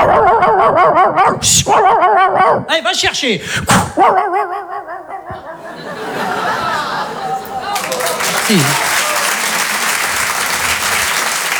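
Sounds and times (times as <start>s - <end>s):
laughter: 0.0s - 2.8s, 4.0s - 11.5s
person imitating a barking dog with their mouth: 0.0s - 5.6s
speech: 1.4s - 2.0s, 2.6s - 4.4s, 8.5s - 8.9s.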